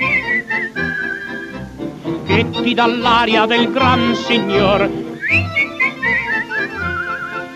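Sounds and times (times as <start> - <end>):
person whistling a waltz tune: 0.0 - 1.7, 3.9 - 7.5
speech: 2.3 - 5.7.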